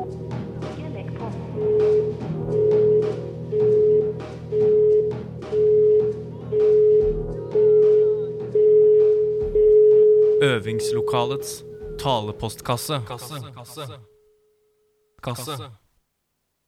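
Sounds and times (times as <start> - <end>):
electronic voicemail beep tone: 1.6 - 10.4
speech: 10.8 - 14.1, 15.2 - 15.8.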